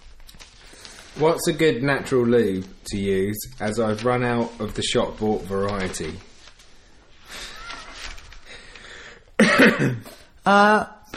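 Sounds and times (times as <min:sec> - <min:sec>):
speech: 0:01.2 - 0:06.3, 0:09.8 - 0:11.1
single short harsh throaty cough: 0:09.4 - 0:10.3.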